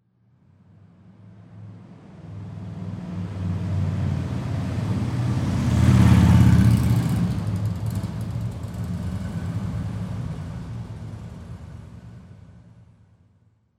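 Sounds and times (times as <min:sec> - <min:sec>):
motorcycle driving by: 0:03.4 - 0:11.1.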